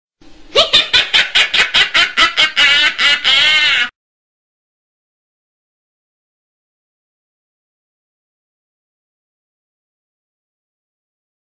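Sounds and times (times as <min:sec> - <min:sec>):
witch laughing: 0:00.5 - 0:04.0.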